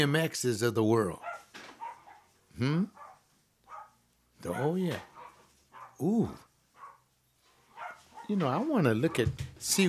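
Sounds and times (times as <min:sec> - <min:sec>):
speech: 0:00.0 - 0:01.3, 0:02.6 - 0:03.0, 0:04.4 - 0:05.1, 0:06.0 - 0:06.5, 0:08.3 - 0:09.8
dog barking: 0:01.2 - 0:06.1, 0:06.7 - 0:07.1, 0:07.7 - 0:09.3.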